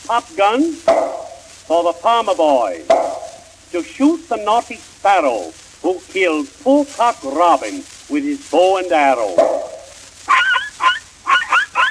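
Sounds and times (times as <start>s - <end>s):
speech: 0.1s - 1.1s, 1.7s - 3.1s, 3.7s - 9.7s
little toy dog high-pitched yipping barks: 9.4s - 11.8s.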